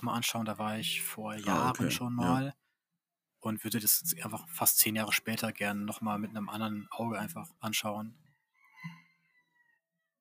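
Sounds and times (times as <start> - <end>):
speech: 0.0 - 2.6, 3.4 - 8.2
rooster crowing: 8.4 - 10.1.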